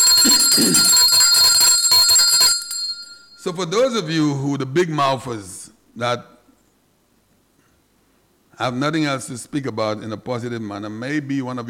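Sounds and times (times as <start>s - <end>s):
small handbell being rung in celebration: 0.0s - 3.5s
speech: 0.2s - 1.5s, 3.4s - 6.3s, 8.6s - 11.6s.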